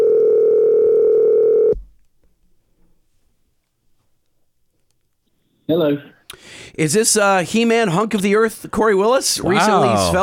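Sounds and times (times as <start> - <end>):
telephone dial tone while a call is placed: 0.0 - 1.8
speech: 5.7 - 10.2.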